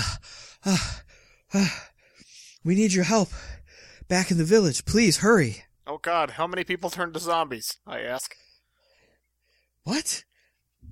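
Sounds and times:
person imitating out-of-breath panting with breathy inhales: 0.0s - 2.6s, 3.3s - 4.1s
speech: 0.6s - 1.9s, 2.6s - 8.4s, 9.8s - 10.3s.

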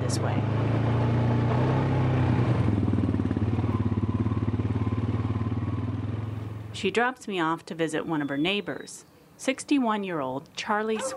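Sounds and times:
four-wheel ATV engine revving: 0.0s - 6.8s
speech: 0.1s - 0.6s, 6.8s - 11.1s.

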